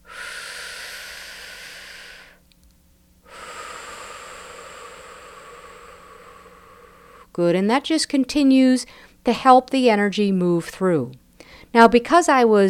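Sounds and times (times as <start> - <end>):
deep breath closing a round of acupressure tapping: 0.0 - 2.4, 3.2 - 7.4, 11.4 - 11.7
speech: 7.4 - 12.6.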